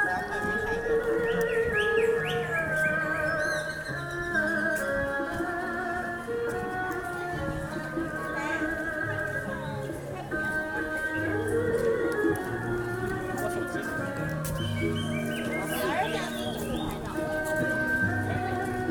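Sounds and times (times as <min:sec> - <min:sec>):
birds chirping and singing in a large park with a lake in Shenzhen: 0:00.0 - 0:05.1, 0:13.5 - 0:17.8
people walking by: 0:00.0 - 0:18.8.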